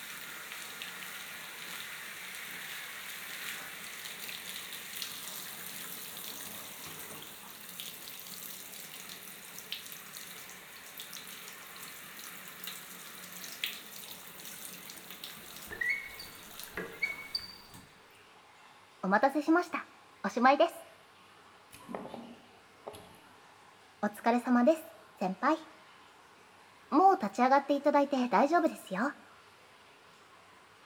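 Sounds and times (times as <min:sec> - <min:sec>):
water poured to rinse someone's back and shoulders: 0:00.0 - 0:17.8
speech: 0:19.1 - 0:20.8, 0:24.2 - 0:25.7, 0:27.2 - 0:29.2.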